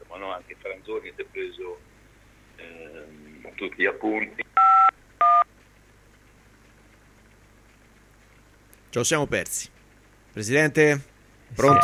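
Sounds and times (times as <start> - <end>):
speech: 0.2 - 2.0, 2.6 - 4.4, 8.9 - 9.8, 10.4 - 11.8
telephone keypad tones on a phone line: 4.6 - 5.5.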